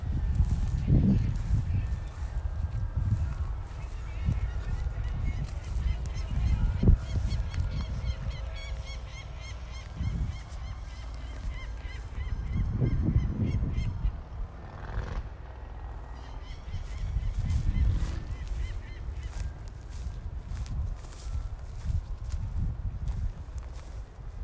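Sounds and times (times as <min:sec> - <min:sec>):
heavy low rumble of wind buffeting the microphone: 0:00.0 - 0:24.4
harsh honking calls of a peregrine falcon and a hawk fighting: 0:03.7 - 0:15.2, 0:15.8 - 0:20.1.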